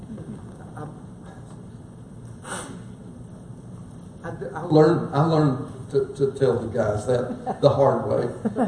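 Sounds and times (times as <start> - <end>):
person blowing nose into a handkerchief: 2.4 - 3.0
speech: 4.3 - 8.6.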